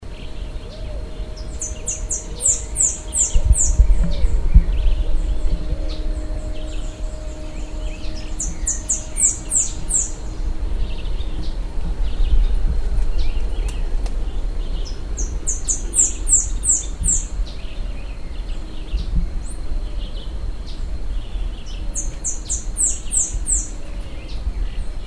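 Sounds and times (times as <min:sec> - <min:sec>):
saffron-billed sparrow Arremon flavirostris high descending notes: 0:00.0 - 0:17.4
low rumbling background noise: 0:00.0 - 0:25.0.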